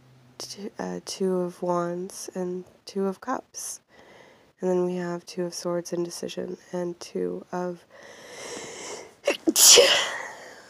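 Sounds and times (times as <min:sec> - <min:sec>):
speech: 0:00.6 - 0:03.8, 0:04.6 - 0:08.2, 0:09.3 - 0:10.2
person sneezing: 0:09.3 - 0:10.4.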